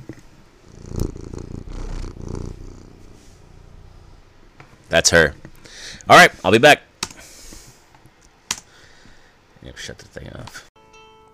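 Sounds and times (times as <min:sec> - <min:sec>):
cat purring: 0:00.5 - 0:04.6
speech: 0:04.9 - 0:05.4, 0:06.1 - 0:06.9, 0:09.8 - 0:10.7.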